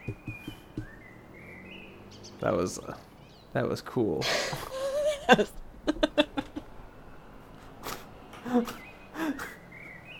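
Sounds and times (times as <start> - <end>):
soft low thumps: 0.0 - 1.1
birds chirping and singing outdoors: 0.0 - 3.8, 8.4 - 10.1
speech: 2.4 - 6.2, 8.6 - 8.8
laughter: 4.2 - 6.7.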